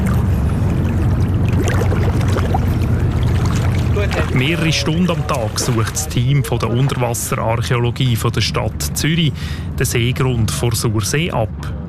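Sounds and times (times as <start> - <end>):
bubbling water: 0.0 - 7.2
water sloshing and splashing: 0.0 - 8.2
steady low rumble: 0.0 - 11.8
speech: 4.4 - 11.7.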